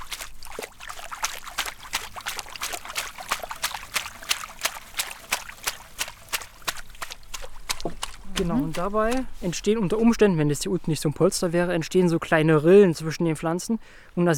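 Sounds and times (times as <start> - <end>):
plants pushed down under water sloshing: 0.0 - 10.2
speech: 8.4 - 14.3.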